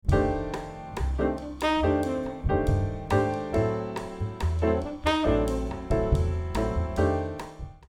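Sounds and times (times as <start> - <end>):
saxophone: 1.2 - 3.7, 4.7 - 7.5.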